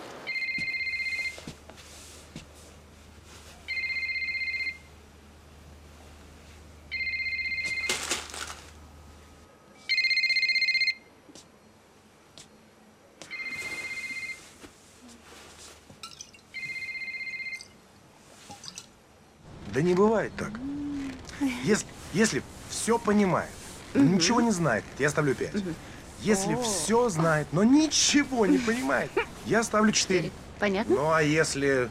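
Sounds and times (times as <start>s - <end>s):
faint noise: 0.0s - 31.8s
mobile phone electronic ringtone ringing in a flat: 0.3s - 1.4s, 3.7s - 4.9s, 6.9s - 7.9s, 9.9s - 11.1s, 13.3s - 14.4s, 16.6s - 17.8s
speech: 19.8s - 20.6s, 21.4s - 31.8s.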